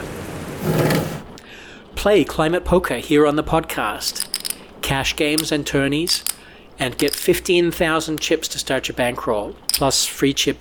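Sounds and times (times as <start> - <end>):
rain hissing: 0.0 - 1.4
speech: 2.0 - 4.3, 4.9 - 10.6.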